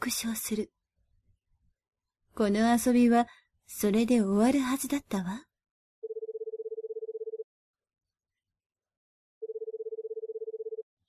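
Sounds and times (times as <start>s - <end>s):
speech: 0.0s - 0.8s, 2.4s - 5.5s
phone line ringback tone: 6.0s - 7.4s, 9.4s - 10.8s.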